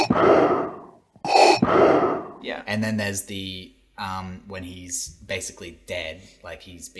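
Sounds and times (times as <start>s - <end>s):
voice imitating heavy rasping mechanical respirator breathing: 0.0s - 2.5s
speech: 2.7s - 6.9s.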